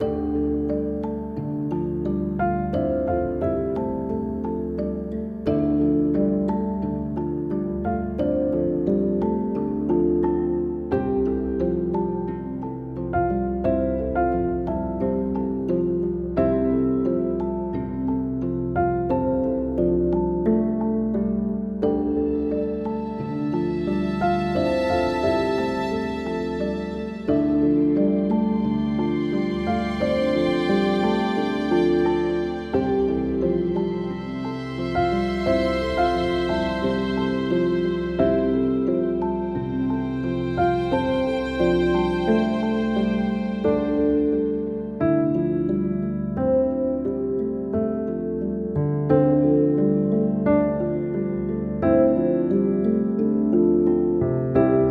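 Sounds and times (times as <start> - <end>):
fantasy music for a living forest: 0.0 - 54.8.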